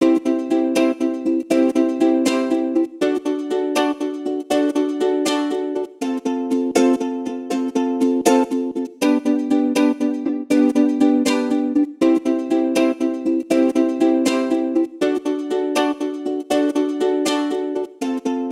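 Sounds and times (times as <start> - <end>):
ukulele pattern at 80 BPM: 0.0 - 18.5.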